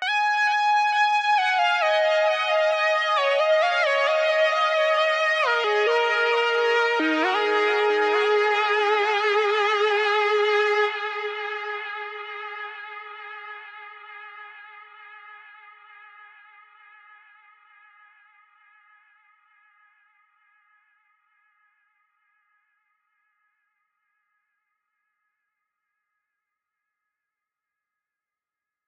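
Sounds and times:
synth lead melody in D sharp minor: 0:00.0 - 0:13.1.

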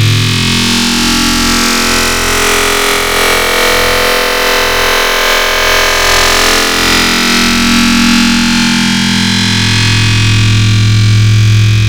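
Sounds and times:
heavy wavetable synthesizer sound: 0:00.0 - 0:11.8.

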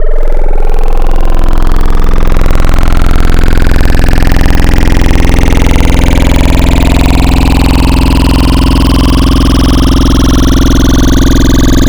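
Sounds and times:
sine partials wavetable tones: 0:00.0 - 0:11.8.

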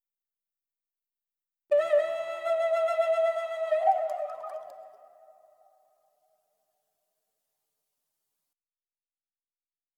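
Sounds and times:
flute loop in A minor: 0:01.7 - 0:05.0.

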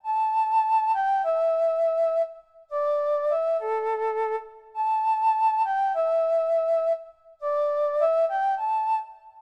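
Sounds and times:
flute: 0:00.0 - 0:09.3.

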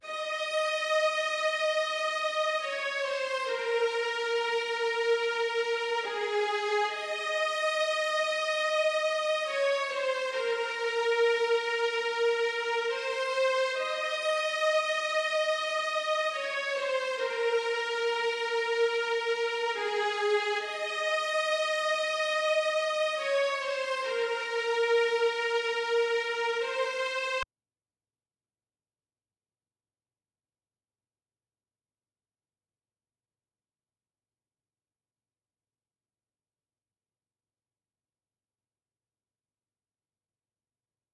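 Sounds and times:
violin in D sharp minor at 140 BPM: 0:00.0 - 0:27.4.

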